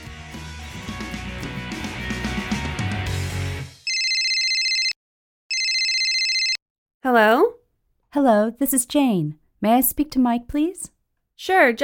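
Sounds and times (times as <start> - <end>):
short stretch of music: 0.0 - 3.8
telephone ringing with a bright electronic trill: 3.9 - 6.6
speech: 7.0 - 11.8.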